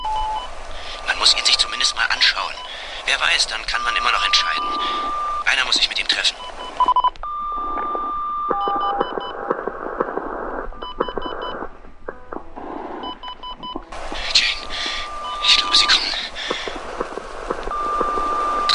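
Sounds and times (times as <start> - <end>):
steady phone tone: 0.0 - 0.5, 3.7 - 5.8, 6.4 - 18.7
telephone keypad dialing beeps: 0.0 - 0.5, 3.8 - 12.4, 13.0 - 18.7
hissy crackling background: 0.0 - 18.7
speech: 1.2 - 1.6, 2.2 - 6.4.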